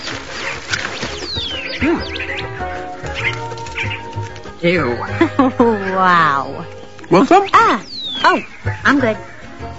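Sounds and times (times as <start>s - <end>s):
rescued birds flapping in an aviary: 0.0s - 4.5s
many rescued birds chirping, tweeting and whistling in an aviary treatment room: 0.0s - 9.7s
speech: 1.8s - 3.6s, 4.6s - 9.3s.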